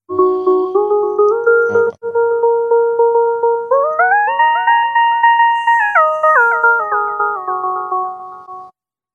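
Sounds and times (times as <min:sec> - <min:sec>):
bright electronic synthesizer lead melody played on a phone app: 0:00.1 - 0:08.7.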